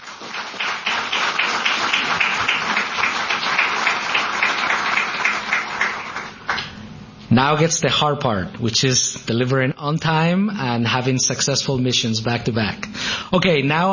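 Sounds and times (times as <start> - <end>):
crowd applauding: 0.0 - 6.7
speech: 7.4 - 13.9.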